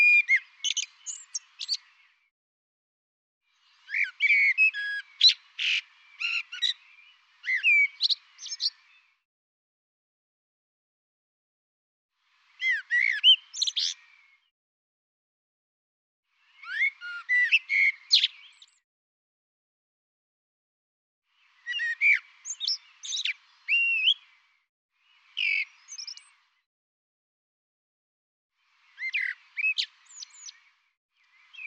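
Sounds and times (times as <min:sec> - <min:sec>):
bird song with chirps whistles and trilled notes: 0:00.0 - 0:02.3, 0:03.4 - 0:09.2, 0:12.2 - 0:14.5, 0:16.3 - 0:18.8, 0:21.3 - 0:26.7, 0:28.6 - 0:31.6.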